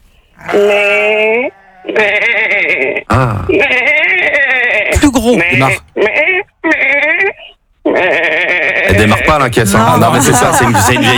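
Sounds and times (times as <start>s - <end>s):
speech: 0.4s - 4.2s, 5.2s - 7.0s, 8.0s - 11.1s
sheep bleating in a pasture: 0.4s - 9.3s
laughter: 8.9s - 11.1s.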